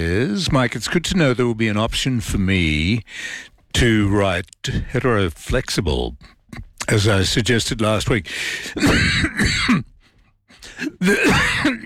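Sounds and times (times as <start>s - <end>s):
speech: 0.0s - 9.9s, 10.6s - 11.8s
person coughing after inhaling something: 8.7s - 11.8s
person clearing throat after inhaling something: 8.8s - 10.0s, 10.6s - 11.8s.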